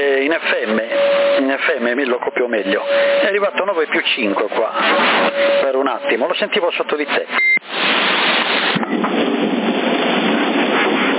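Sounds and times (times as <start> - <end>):
CB radio static hiss: 0.0 - 8.9
thunder heard over CB radio: 0.0 - 11.1
speech: 1.6 - 8.0.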